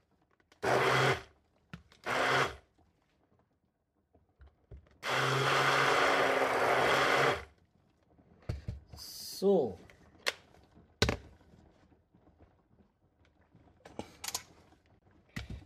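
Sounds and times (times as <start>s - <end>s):
electric hand mixer mixing ingredients: 0.6s - 1.2s, 2.0s - 2.6s, 5.0s - 7.5s.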